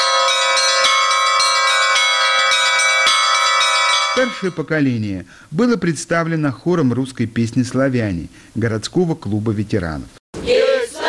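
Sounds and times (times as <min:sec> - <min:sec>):
bells of a portable belfry pealing: 0:00.0 - 0:04.7
speech: 0:04.2 - 0:10.7.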